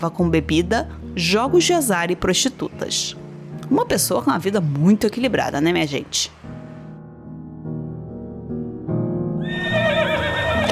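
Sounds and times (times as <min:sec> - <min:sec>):
speech: 0:00.0 - 0:06.6
horse neighing: 0:09.4 - 0:10.7.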